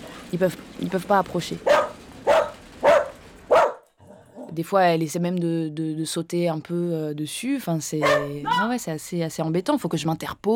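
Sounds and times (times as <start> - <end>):
speech: 0.3 - 1.8, 4.6 - 10.5
female dog barking: 1.6 - 4.6, 8.0 - 8.7.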